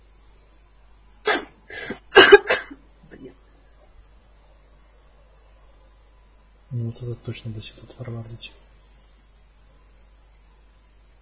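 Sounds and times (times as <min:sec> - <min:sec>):
harsh coughs: 0:02.1 - 0:03.3
speech: 0:07.0 - 0:08.7.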